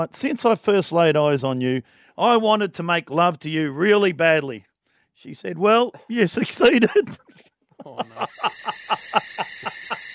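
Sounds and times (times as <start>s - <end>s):
speech: 0.0s - 10.0s
laughter: 6.2s - 10.1s
crickets chirping: 8.0s - 10.1s.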